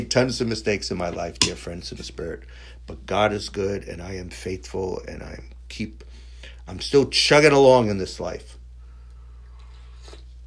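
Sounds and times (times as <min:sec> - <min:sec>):
speech: 0:00.0 - 0:06.1, 0:06.7 - 0:08.6
steady low electrical hum: 0:00.0 - 0:10.4
soft slurp of a drink: 0:09.5 - 0:10.4.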